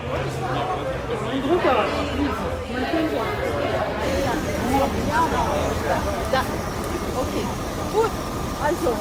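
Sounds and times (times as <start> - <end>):
busy crowd of passengers chatting with overlapping voices: 0.0 - 9.0
low bus engine rumble in Berlin, idling and pulling away: 2.7 - 9.0.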